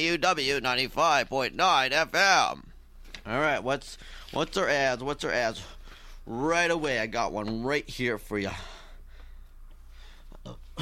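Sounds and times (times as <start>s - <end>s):
speech: 0.0s - 8.7s
person burping: 10.4s - 10.8s.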